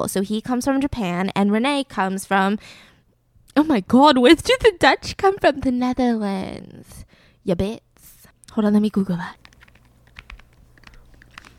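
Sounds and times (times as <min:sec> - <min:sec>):
speech: 0:00.0 - 0:02.9, 0:03.6 - 0:07.8, 0:08.5 - 0:09.4
typing on a computer keyboard: 0:09.4 - 0:11.5.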